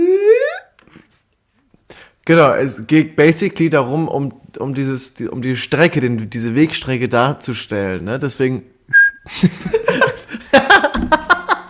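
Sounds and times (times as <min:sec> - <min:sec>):
speech: 0:02.3 - 0:09.9
brief steady whistled note: 0:08.9 - 0:09.3
chuckling laughter: 0:09.3 - 0:11.6.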